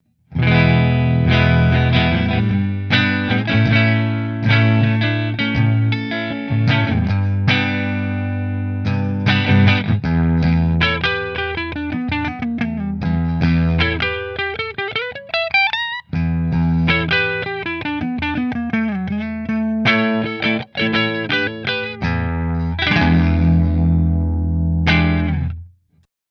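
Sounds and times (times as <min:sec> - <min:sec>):
guitars with Heritage neck: 0:00.3 - 0:25.7.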